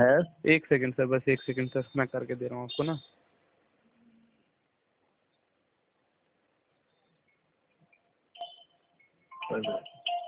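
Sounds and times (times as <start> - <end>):
speech: 0.0 - 3.2, 9.5 - 9.9
phone electronic ringtone for an incoming call: 8.4 - 10.2.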